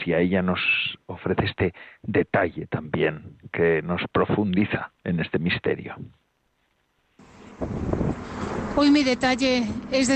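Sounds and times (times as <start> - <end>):
speech: 0.0 - 6.2, 7.6 - 8.2, 8.8 - 10.1
bus passing: 7.2 - 10.1
outdoor street traffic roar: 7.2 - 10.1.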